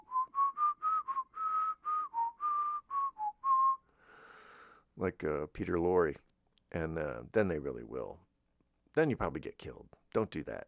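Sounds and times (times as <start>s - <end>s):
person whistling a short bouncy melody: 0.0s - 3.9s
speech: 5.0s - 8.3s, 9.0s - 10.6s.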